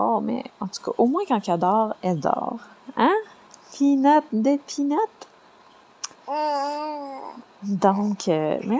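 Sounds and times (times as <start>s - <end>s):
speech: 0.0s - 5.2s, 6.3s - 8.7s
baby babbling: 6.2s - 8.1s.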